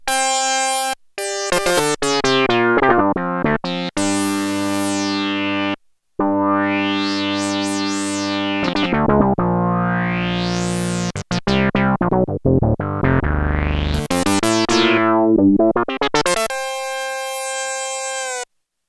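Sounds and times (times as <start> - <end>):
Sequential Circuits Prophet-5 synthesizer quack factory patch: 0.2 - 3.0, 4.0 - 12.2, 12.9 - 18.5.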